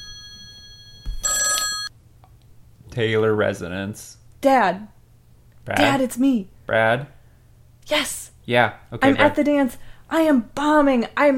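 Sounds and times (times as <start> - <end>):
telephone bell ringing: 0.0 - 1.9
speech: 3.0 - 5.0, 5.6 - 7.2, 7.9 - 11.3.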